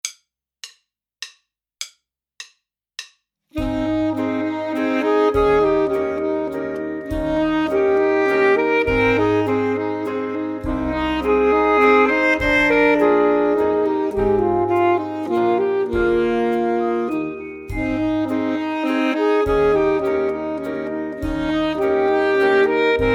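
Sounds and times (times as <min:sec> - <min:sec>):
full saxophone playing: 0:03.6 - 0:23.1.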